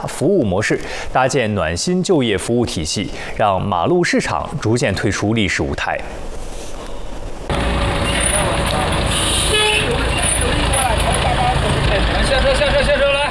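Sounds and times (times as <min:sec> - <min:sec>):
speech: 0:00.0 - 0:06.4
road traffic: 0:06.0 - 0:13.2
vehicle horn tooting: 0:08.0 - 0:10.4
crowd murmuring at a day-labor market: 0:08.0 - 0:13.2.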